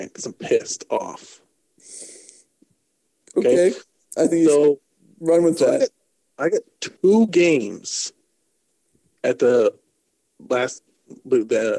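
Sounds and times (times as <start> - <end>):
speech: 0.0 - 2.1, 3.4 - 8.2, 9.2 - 9.8, 10.4 - 11.7
breathy exhale into the microphone: 1.8 - 2.4.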